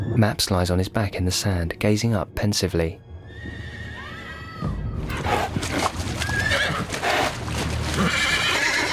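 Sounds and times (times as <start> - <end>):
speech: 0.2 - 3.6
restless horse whinnying: 3.3 - 8.9
horse hooves trotting and splashing through shallows at a beach: 5.0 - 8.9
surf washing at a beach: 5.2 - 8.9.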